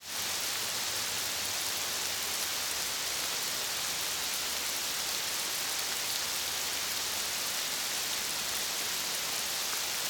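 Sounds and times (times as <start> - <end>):
rain: 0.0 - 10.0.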